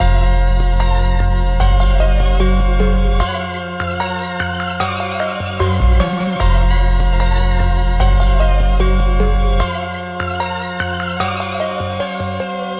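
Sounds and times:
eerie trap hip hop melody: 0.0s - 12.7s.

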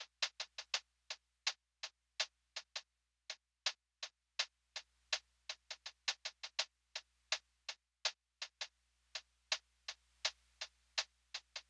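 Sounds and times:
lo-fi hi-hat loop: 0.0s - 1.6s, 4.4s - 11.6s.

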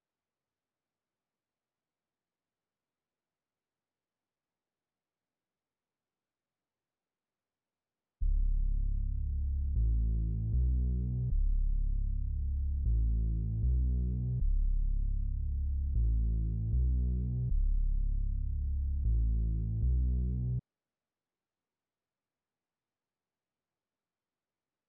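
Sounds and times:
bass melody in C sharp minor: 8.2s - 20.6s.

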